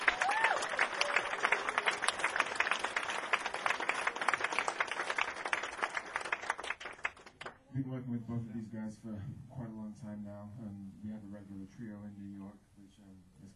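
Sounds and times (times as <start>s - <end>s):
audience applause: 0.0s - 7.6s
speech: 7.8s - 12.7s.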